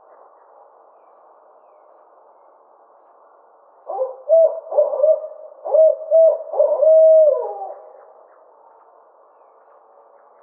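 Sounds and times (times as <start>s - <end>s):
barred owl hooting: 3.9s - 8.0s.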